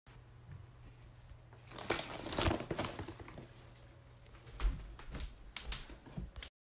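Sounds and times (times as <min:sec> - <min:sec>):
handbag being picked up: 0:01.7 - 0:03.5.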